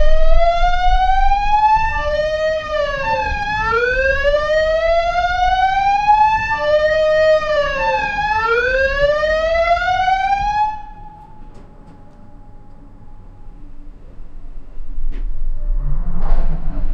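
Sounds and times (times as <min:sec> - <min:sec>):
muffled emergency alarm siren: 0:00.0 - 0:16.8.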